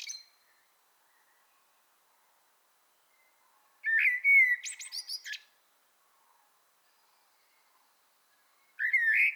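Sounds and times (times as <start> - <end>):
Common blackbird Turdus merula song: 0.0 - 1.8, 2.9 - 5.6, 6.3 - 9.3.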